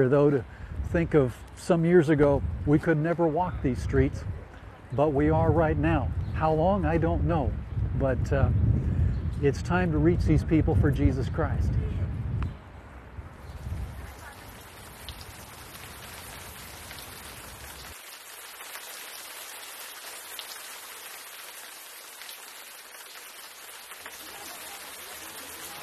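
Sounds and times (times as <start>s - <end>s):
speech: 0.0s - 8.7s, 9.4s - 11.9s
rain spattering on hard ground in Red Square: 13.5s - 25.8s.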